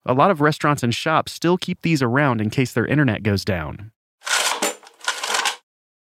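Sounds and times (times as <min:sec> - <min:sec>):
speech: 0:00.0 - 0:04.0
manual credit card imprinter sliding across a card: 0:04.2 - 0:05.6.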